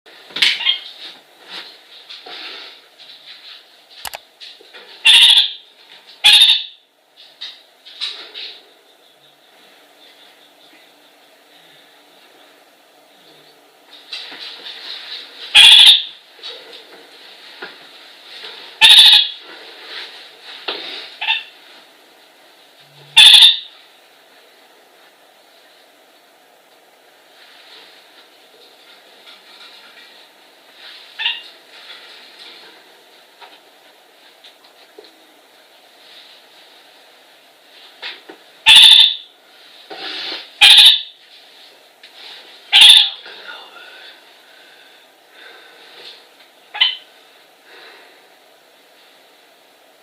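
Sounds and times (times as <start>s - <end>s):
Cyanoramphus malherbi kakariki calls: 0.4s - 0.9s, 5.0s - 5.6s, 6.2s - 6.8s, 15.5s - 16.2s, 18.8s - 19.4s, 23.2s - 23.8s, 31.2s - 31.5s, 38.6s - 39.3s, 40.6s - 41.1s, 42.7s - 43.2s, 46.7s - 47.1s.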